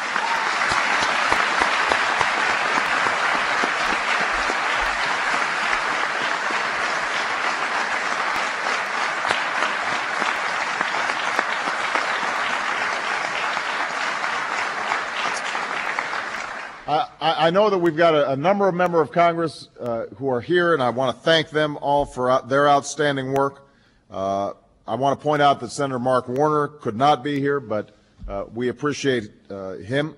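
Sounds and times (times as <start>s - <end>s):
large audience applause: 0.0s - 17.0s
speech: 17.4s - 30.1s.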